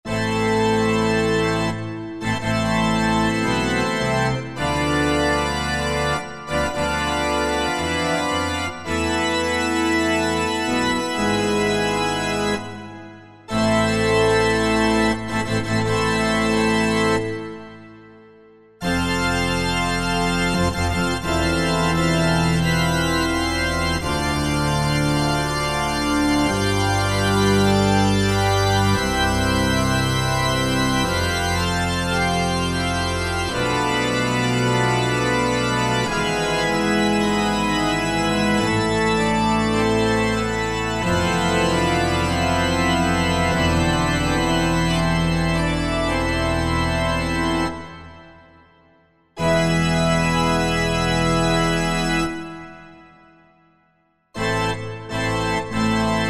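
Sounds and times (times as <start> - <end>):
pipe organ tutti: 0.0 - 48.7, 49.3 - 53.6, 54.3 - 56.2.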